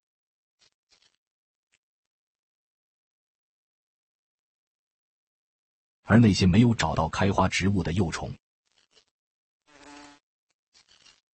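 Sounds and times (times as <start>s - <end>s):
flower fly buzzing: 0.6s - 1.2s, 8.7s - 10.2s, 10.8s - 11.2s
speech: 6.1s - 8.4s.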